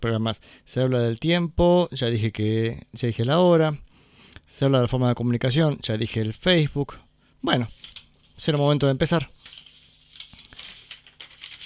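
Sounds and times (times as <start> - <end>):
speech: 0.0 - 3.9, 4.5 - 9.4
sheets of paper being shuffled and straightened: 7.6 - 11.6.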